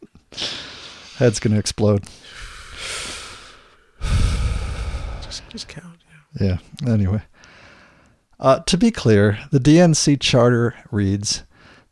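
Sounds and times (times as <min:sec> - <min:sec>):
person taking a deep breath: 0:00.3 - 0:01.2, 0:02.1 - 0:05.7, 0:07.3 - 0:08.2
speech: 0:01.2 - 0:03.0, 0:05.5 - 0:07.3, 0:08.4 - 0:11.5.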